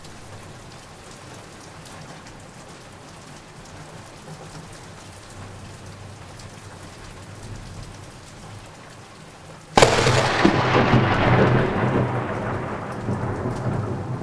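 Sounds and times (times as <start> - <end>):
lightning strike in a summer thunderstorm: 9.8 - 14.1.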